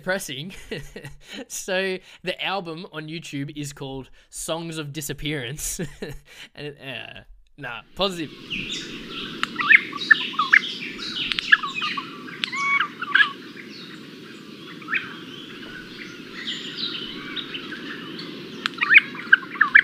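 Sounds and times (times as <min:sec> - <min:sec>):
speech: 0:00.0 - 0:09.2
low rumbling hiss: 0:00.0 - 0:19.8
Regent Honeyeater sharp metallic chirps and warbling notes: 0:08.0 - 0:19.8.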